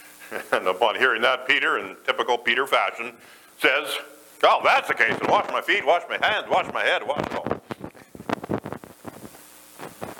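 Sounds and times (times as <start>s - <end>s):
speech: 0.3s - 7.4s
microphone cord being stepped on during a church communion service: 4.6s - 10.1s.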